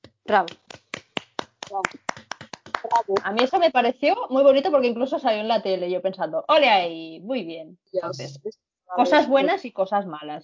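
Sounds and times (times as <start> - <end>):
hands clapping: 0.0 - 3.7
speech: 0.3 - 0.6, 1.7 - 2.3, 2.9 - 10.4
person speaking and laughing: 8.0 - 8.4.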